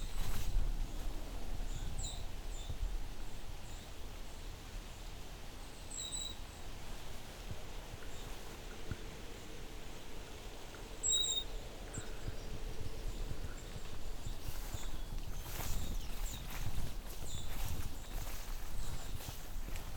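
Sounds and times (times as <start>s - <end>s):
soft outdoor hiss: 0.0s - 19.9s
golden-crowned kinglet triple call notes in a vineyard region: 11.0s - 12.2s.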